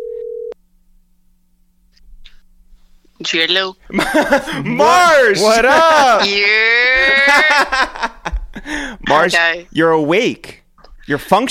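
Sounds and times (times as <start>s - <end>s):
loud steady telephone dial tone: 0.0s - 0.6s
speech: 3.2s - 11.5s
laughter: 3.9s - 9.1s.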